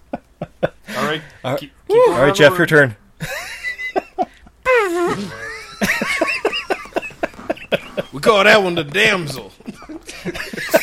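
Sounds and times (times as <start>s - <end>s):
speech: 1.1s - 3.0s, 8.2s - 9.6s
people laughing: 3.2s - 10.8s
person making a fart noise with their mouth: 4.7s - 5.7s.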